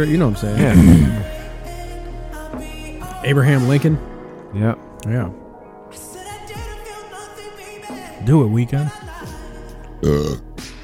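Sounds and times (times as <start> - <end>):
speech: 0.0 - 1.3, 3.2 - 6.1, 8.2 - 9.3, 10.0 - 10.5
burp: 0.6 - 1.3, 10.0 - 10.5.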